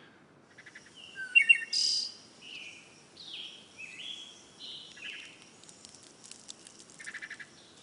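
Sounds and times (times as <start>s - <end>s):
birds chirping and warbling outside a window: 0.5s - 7.8s.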